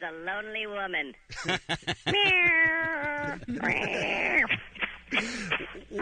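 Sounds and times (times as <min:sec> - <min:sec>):
speech: 0:00.0 - 0:05.9
laughter: 0:01.3 - 0:05.9
cat meowing in Massachusetts: 0:02.1 - 0:04.4.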